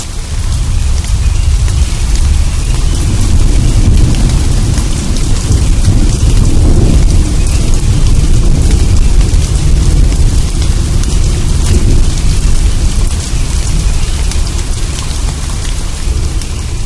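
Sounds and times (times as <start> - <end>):
deep thunder rumbles: 0.0 - 16.8
heavy rain hissing in a thunderstorm: 0.0 - 16.8.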